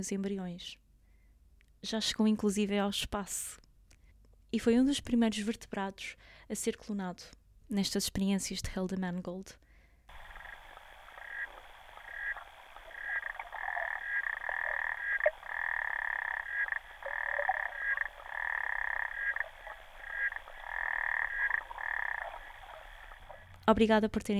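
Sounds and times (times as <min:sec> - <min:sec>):
speech: 0:00.0 - 0:00.8, 0:01.8 - 0:03.6, 0:04.5 - 0:09.6, 0:23.7 - 0:24.3
chorus of frogs croaking: 0:10.1 - 0:23.7.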